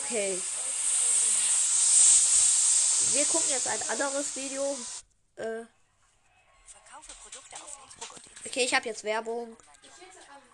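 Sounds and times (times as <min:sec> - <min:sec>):
burning fuse of a smoke bomb hissing after being struck alight: 0:00.0 - 0:05.0
speech: 0:00.1 - 0:00.6, 0:03.0 - 0:05.8, 0:08.6 - 0:09.7.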